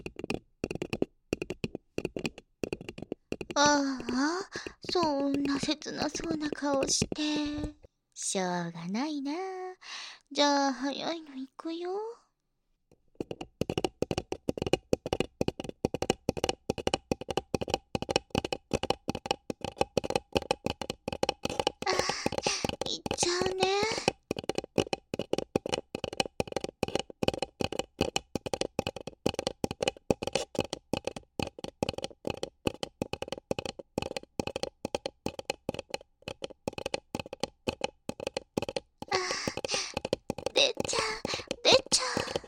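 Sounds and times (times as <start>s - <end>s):
rapid rubbing and tapping on a paper cup: 0.0s - 7.9s, 12.9s - 42.4s
speech: 3.6s - 9.6s, 10.3s - 12.1s.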